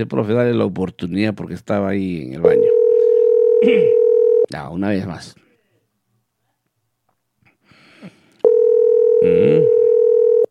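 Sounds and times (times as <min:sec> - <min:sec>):
speech: 0:00.0 - 0:02.8, 0:03.6 - 0:05.4
telephone dial tone while calling someone: 0:02.6 - 0:04.5, 0:08.4 - 0:10.5.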